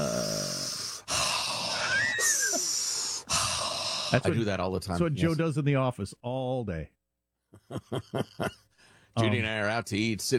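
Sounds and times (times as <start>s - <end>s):
deep mindful breathing in and out: 0.0s - 4.2s, 8.7s - 9.2s
speech: 4.1s - 10.3s
laughter: 7.6s - 8.7s.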